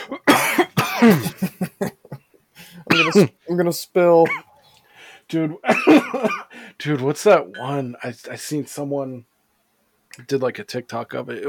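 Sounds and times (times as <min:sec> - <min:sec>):
loud harsh coughing fit: 0:00.0 - 0:02.2, 0:02.8 - 0:03.4, 0:04.2 - 0:04.6, 0:05.6 - 0:06.6
speech: 0:01.0 - 0:01.4, 0:03.2 - 0:04.4, 0:05.3 - 0:09.3, 0:10.1 - 0:11.4.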